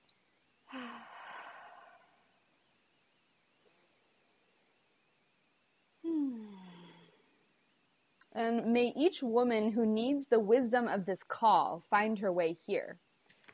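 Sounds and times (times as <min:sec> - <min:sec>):
deep breathing in through the nose and out through the mouth: 0:00.7 - 0:02.4, 0:06.0 - 0:07.3
speech: 0:08.4 - 0:13.0.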